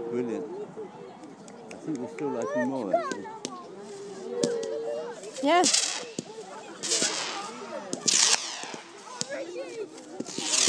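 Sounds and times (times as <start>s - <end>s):
speech: 0.2s - 0.6s, 1.9s - 3.4s, 5.4s - 5.9s
small fireworks going off across the sky: 4.4s - 10.6s.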